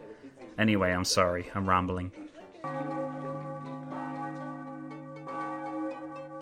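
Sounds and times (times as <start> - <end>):
speech: 0.6 - 3.0
church bells ringing around the end of morning mass: 2.6 - 6.4.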